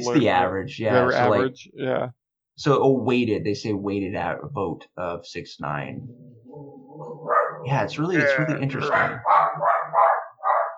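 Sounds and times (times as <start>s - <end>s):
speech: 0.0s - 9.7s
dog barking: 7.0s - 7.7s, 8.8s - 10.7s.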